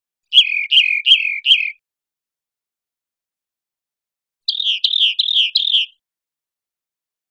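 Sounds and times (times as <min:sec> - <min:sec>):
rock wren singing buzzy downslurred notes: 0:00.3 - 0:01.8, 0:04.5 - 0:06.0.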